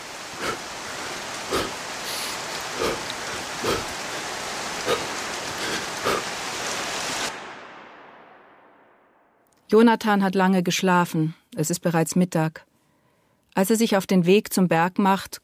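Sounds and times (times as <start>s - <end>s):
rain falling in a steady even hiss: 0.0s - 8.5s
speech: 9.8s - 12.7s, 13.6s - 15.4s.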